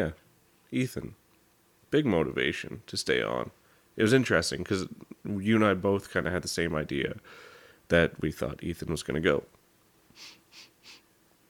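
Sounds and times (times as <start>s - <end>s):
speech: 0.0s - 1.2s, 1.9s - 9.6s
person sniffling tearfully: 10.1s - 11.1s.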